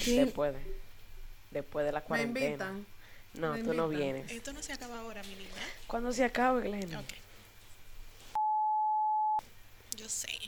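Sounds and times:
speech: 0.0s - 0.9s, 1.5s - 7.2s, 10.0s - 10.4s
faint noise: 0.0s - 8.4s, 9.4s - 10.4s
phone signalling an incoming call with a single steady electronic beep: 8.4s - 9.4s.

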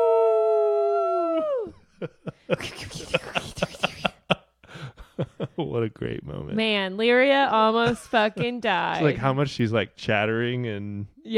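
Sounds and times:
person imitating a howl: 0.0s - 1.8s
laughter: 1.9s - 5.9s, 7.9s - 9.1s
speech: 2.0s - 3.8s, 5.6s - 11.3s.

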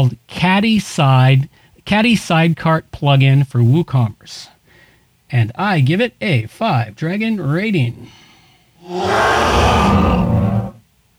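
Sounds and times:
speech: 0.0s - 4.6s, 5.3s - 10.5s
dragon roar sound effect: 8.8s - 10.8s.

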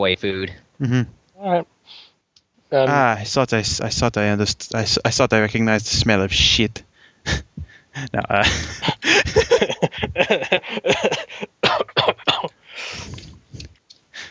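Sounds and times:
speech: 0.0s - 2.1s, 2.7s - 11.2s
man laughing: 0.8s - 1.1s, 7.3s - 13.2s
man coughing in harsh choppy bursts: 7.3s - 13.2s.

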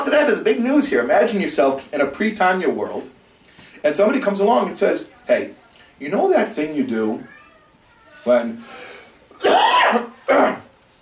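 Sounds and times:
speech: 0.1s - 3.2s, 3.8s - 7.4s, 8.2s - 8.8s, 9.4s - 10.6s
person coughing: 9.4s - 10.7s.

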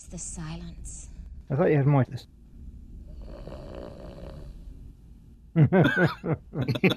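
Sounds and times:
speech: 0.0s - 2.4s, 5.6s - 6.9s
man snoring while asleep: 3.2s - 4.6s
chuckling: 5.6s - 6.9s.

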